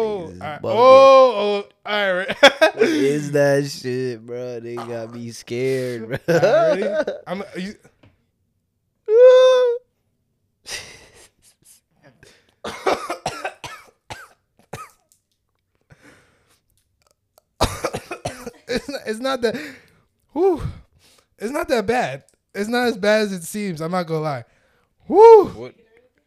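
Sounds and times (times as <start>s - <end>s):
speech: 0.0s - 7.9s, 9.1s - 9.8s, 18.8s - 19.8s, 20.4s - 20.8s, 21.4s - 24.5s, 25.1s - 25.8s
laughter: 2.2s - 3.2s, 4.8s - 7.7s
person coughing harshly after inhaling something: 12.6s - 15.0s, 17.6s - 19.0s
gasping breaths: 19.6s - 21.3s.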